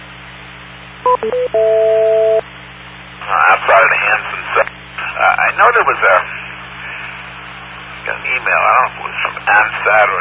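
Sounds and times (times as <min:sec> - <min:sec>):
faint hum: 0:00.0 - 0:10.1
speech: 0:01.0 - 0:02.4, 0:03.3 - 0:06.4, 0:08.1 - 0:10.1
short electronic phone beeps of incoming call: 0:01.1 - 0:02.4.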